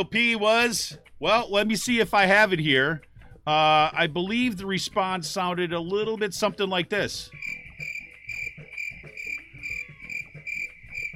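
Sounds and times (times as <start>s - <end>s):
speech: 0.0s - 7.6s
crickets chirping: 7.4s - 11.1s.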